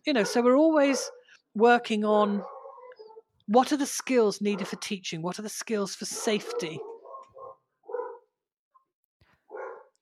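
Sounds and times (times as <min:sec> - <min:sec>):
speech: 0:00.0 - 0:02.6, 0:03.5 - 0:06.9
dog barking alerting to sheep in the next field: 0:00.1 - 0:01.3, 0:02.4 - 0:03.3, 0:04.5 - 0:04.8, 0:06.1 - 0:08.3, 0:09.5 - 0:10.0.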